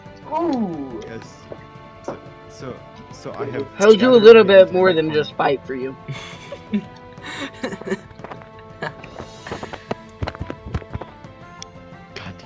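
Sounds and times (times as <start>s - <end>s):
speech: 0.3s - 1.6s, 2.5s - 8.0s
imitated horse hooves clip-clopping: 0.5s - 2.3s, 7.6s - 11.6s
laughter: 6.1s - 8.0s.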